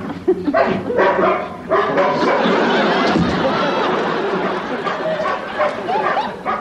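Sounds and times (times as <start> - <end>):
laughter: 0.0 - 1.0, 1.9 - 6.5
dog barking and yapping: 0.6 - 2.6, 4.4 - 6.5
overlapping human voices and chatter: 0.6 - 6.5.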